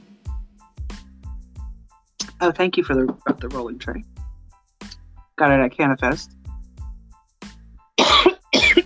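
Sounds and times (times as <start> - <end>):
speech: 2.4 - 4.2, 5.4 - 6.4
person coughing: 8.0 - 8.8.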